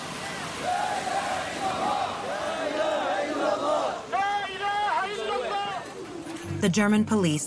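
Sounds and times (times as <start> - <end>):
large crowd of protesters shouting and chanting at a demonstration: 0.6 - 6.0
speech: 6.6 - 7.4.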